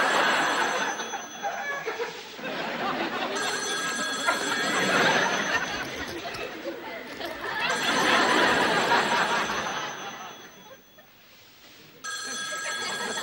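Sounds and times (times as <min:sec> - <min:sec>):
telephone bell ringing: 0:00.1 - 0:02.0, 0:02.8 - 0:11.1, 0:12.0 - 0:13.2
faint chuckling: 0:04.5 - 0:11.2.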